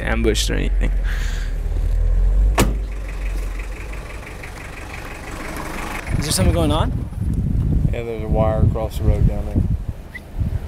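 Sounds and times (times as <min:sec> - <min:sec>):
parked car engine idling: 0:00.0 - 0:07.4
speech: 0:00.1 - 0:01.4, 0:06.2 - 0:07.2, 0:07.9 - 0:09.7
car door thunk: 0:02.6 - 0:02.9.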